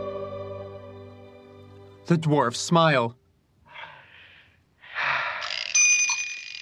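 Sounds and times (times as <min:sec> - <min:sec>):
speech: 0:02.1 - 0:03.2
soft breathy whir of a cuckoo clock: 0:03.7 - 0:06.0
bright sustained bell-like ring of a cuckoo clock: 0:05.7 - 0:06.6.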